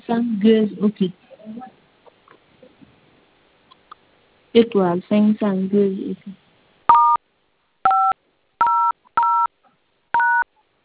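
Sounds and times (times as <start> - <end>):
speech: 0.1 - 1.7, 4.5 - 6.4
telephone keypad DTMF dialing tones: 7.9 - 9.5, 10.2 - 10.4.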